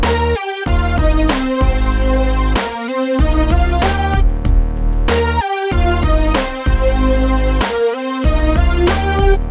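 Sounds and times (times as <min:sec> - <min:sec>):
simple melodies in E flat major: 0:00.1 - 0:04.2, 0:05.2 - 0:09.4.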